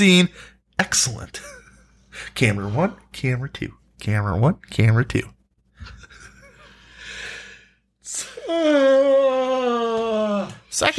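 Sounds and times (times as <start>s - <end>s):
speech: 0.0s - 1.6s, 2.2s - 6.1s, 8.1s - 10.9s
person yawning: 8.1s - 10.6s.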